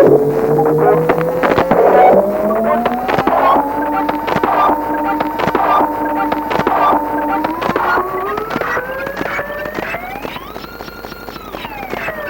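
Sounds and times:
droning engine-like self-generated feedback tone from a delay pedal: 0.0s - 11.4s
constant crackling clicks: 0.0s - 12.2s
soft pulses: 0.0s - 12.2s.

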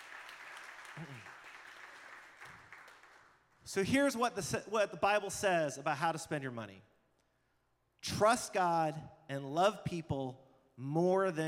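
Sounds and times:
audience applause: 0.0s - 3.4s
speech: 1.0s - 1.4s, 3.7s - 6.9s, 8.1s - 11.4s.

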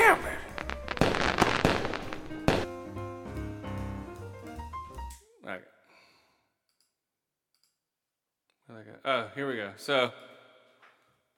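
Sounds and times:
fireworks bangs and crackles outside: 0.0s - 2.8s
speech: 9.0s - 10.3s.

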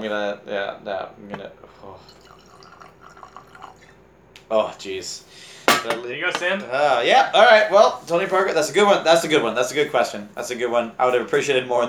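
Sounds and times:
speech: 0.0s - 2.4s, 4.5s - 11.8s
drink pouring into a glass: 1.4s - 4.0s.

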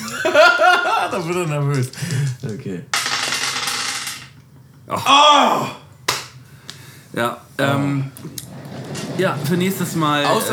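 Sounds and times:
laughter: 0.0s - 2.4s, 9.2s - 10.5s
speech: 1.1s - 3.0s, 4.9s - 5.8s, 7.1s - 8.4s, 9.2s - 10.5s
dice clattering across a hard tabletop: 1.7s - 4.4s.

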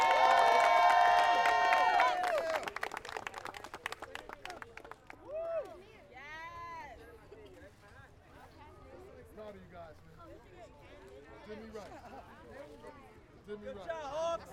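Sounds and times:
whoops and shouts: 0.0s - 2.7s, 5.2s - 5.8s
small group yelling and cheering: 0.0s - 2.8s
scattered fast clapping: 0.0s - 5.3s.

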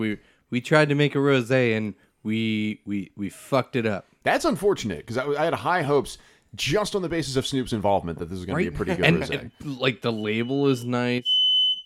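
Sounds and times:
speech: 0.0s - 11.8s
person talking and laughing: 8.5s - 10.0s
loud piercing high-pitched smoke alarm beep: 10.0s - 11.8s.

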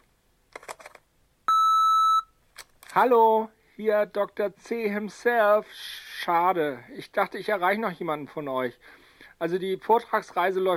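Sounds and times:
electronic beep of an answering machine: 1.5s - 2.3s
speech: 3.0s - 10.7s.

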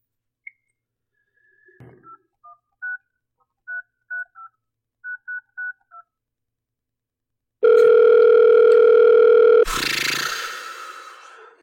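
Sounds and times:
steady ringing tone on a landline: 7.6s - 9.7s.

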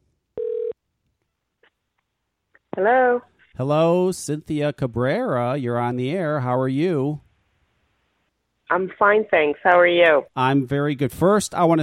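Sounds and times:
steady telephone tone: 0.4s - 0.8s
speech: 2.8s - 7.3s, 8.7s - 11.8s.

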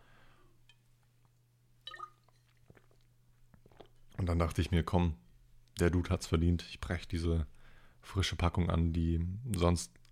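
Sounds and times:
steady low electrical hum: 0.0s - 10.0s
sipping water: 1.0s - 4.6s
wet mouth sounds: 1.9s - 4.2s
gulping and swallowing water: 2.5s - 4.2s
speech: 4.2s - 5.2s, 5.8s - 10.0s.

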